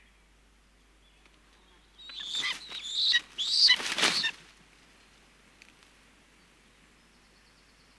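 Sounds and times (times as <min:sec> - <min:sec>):
common buzzard hunger call: 0:02.1 - 0:04.4.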